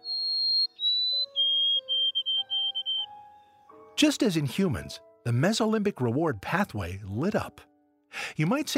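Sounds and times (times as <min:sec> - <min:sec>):
male White-throated Sparrow song: 0:00.0 - 0:03.6
speech: 0:04.0 - 0:08.7.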